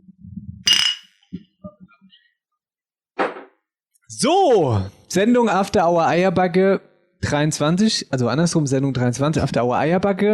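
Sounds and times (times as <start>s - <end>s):
glasses clinking in a toast: 0.7s - 1.0s
speech: 4.1s - 10.3s.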